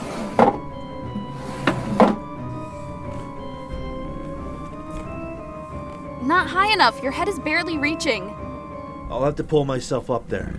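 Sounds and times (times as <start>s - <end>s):
wooden chair shifted into place: 0.0s - 0.7s, 1.4s - 2.4s
speech: 6.3s - 8.4s, 9.1s - 10.5s.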